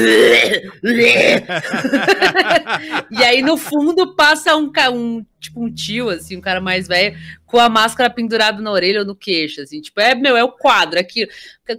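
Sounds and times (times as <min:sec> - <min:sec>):
person imitating a harsh raspy cough: 0:00.0 - 0:01.5
speech: 0:00.0 - 0:11.7
laughter: 0:01.3 - 0:04.0.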